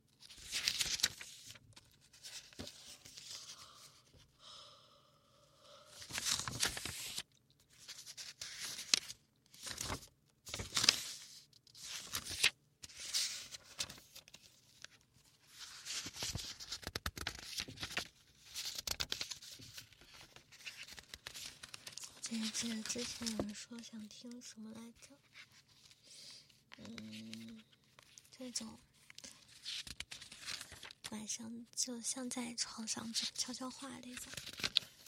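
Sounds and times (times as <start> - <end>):
pages of a small notebook being flipped: 0.2 - 3.5, 6.0 - 23.6, 29.1 - 31.1, 34.2 - 35.0
speech: 22.6 - 25.3, 28.5 - 28.9, 31.1 - 34.6.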